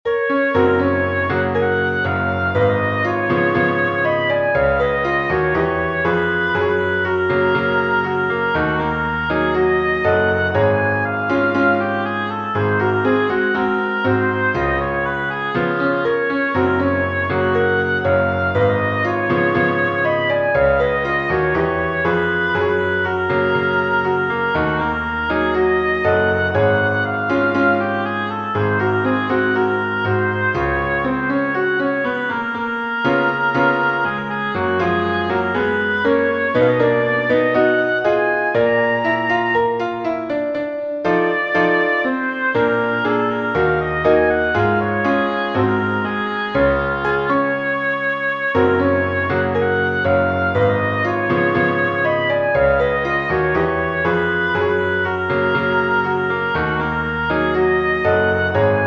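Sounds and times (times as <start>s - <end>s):
oboe: 0.0s - 58.8s
piano: 0.0s - 58.8s.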